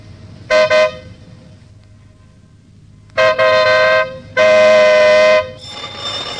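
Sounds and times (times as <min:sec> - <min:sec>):
car horn honking: 0:00.5 - 0:01.2, 0:03.1 - 0:05.7.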